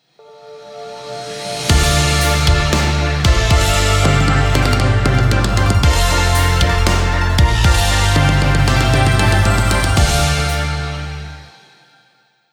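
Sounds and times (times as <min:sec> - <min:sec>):
synthwave intro: 0:00.2 - 0:11.8.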